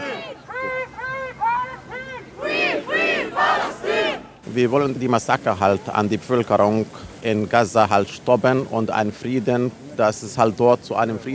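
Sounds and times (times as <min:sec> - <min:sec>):
crowd chanting slogans at a rally on the Opernplatz in Frankfurt Germany: 0:00.0 - 0:04.5
speech: 0:04.5 - 0:11.3.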